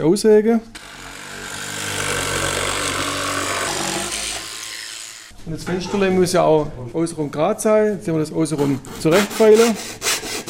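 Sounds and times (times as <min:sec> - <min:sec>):
speech: 0:00.0 - 0:00.8, 0:05.5 - 0:10.1
power drill boring a small hole into wood for a model ship window: 0:00.8 - 0:05.3.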